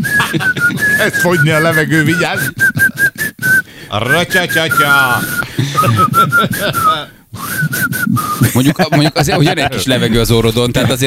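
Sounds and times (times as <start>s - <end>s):
laughter: 0.0s - 3.1s, 5.4s - 7.1s, 8.3s - 11.0s
person whistling while grinning: 0.0s - 8.6s
speech: 0.3s - 2.6s, 3.9s - 11.0s.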